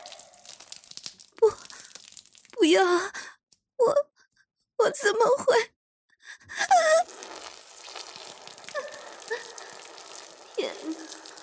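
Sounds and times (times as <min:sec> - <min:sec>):
urine splashing onto a hard floor on a wedding ceremony stage: 0:00.0 - 0:02.6, 0:07.1 - 0:11.4
speech: 0:02.6 - 0:04.1, 0:04.8 - 0:05.8, 0:10.6 - 0:11.2.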